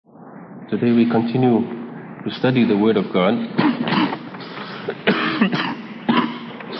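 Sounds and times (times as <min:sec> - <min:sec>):
speech: 0:00.7 - 0:04.2
person coughing harshly: 0:03.6 - 0:06.7.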